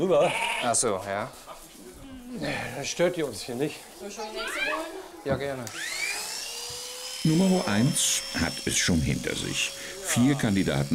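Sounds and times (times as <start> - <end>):
speech: 0.0 - 1.5, 2.3 - 6.0, 7.2 - 10.9
electric clippers shearing a sheep: 5.4 - 10.9.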